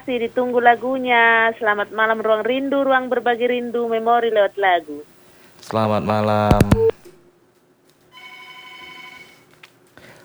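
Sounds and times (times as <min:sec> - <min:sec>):
telephone ringing for an incoming listener call: 0:00.0 - 0:05.1, 0:05.7 - 0:07.0, 0:08.2 - 0:09.4
speech: 0:00.0 - 0:07.0
low hum: 0:00.0 - 0:08.0.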